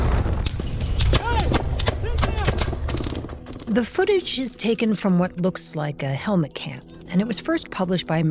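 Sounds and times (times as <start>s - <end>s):
gunfire from a mounted gun in bursts: 0.0s - 3.5s
speech: 3.7s - 8.2s.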